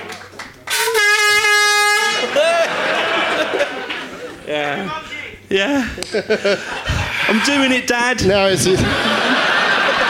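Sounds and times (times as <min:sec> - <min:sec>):
air horn blast marking the winner of a trivia game: 0:00.7 - 0:02.5
laughter: 0:02.1 - 0:05.0, 0:05.6 - 0:10.0
speech: 0:04.9 - 0:09.1.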